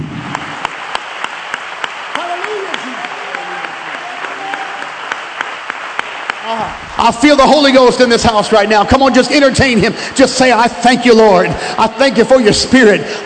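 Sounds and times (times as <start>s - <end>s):
congregation clapping their hands: 0.0s - 9.1s
speech: 6.5s - 13.2s.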